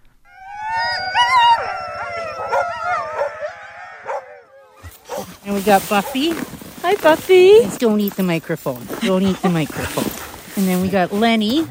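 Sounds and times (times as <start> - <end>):
sled dogs howling in chorus: 0.3 - 6.4
speech: 5.5 - 11.7.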